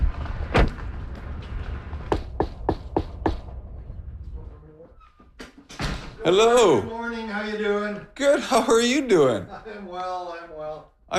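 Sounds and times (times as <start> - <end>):
thud: 0.0 - 3.8, 5.4 - 6.2
low rumble: 0.0 - 5.0
knocking on a front door: 2.1 - 3.4
speech: 6.2 - 11.1.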